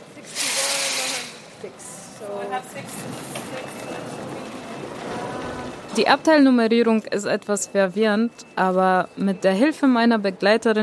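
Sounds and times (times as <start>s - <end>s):
hissing air burst on a night train: 0.3s - 1.5s
speech: 1.6s - 4.3s, 6.0s - 10.8s.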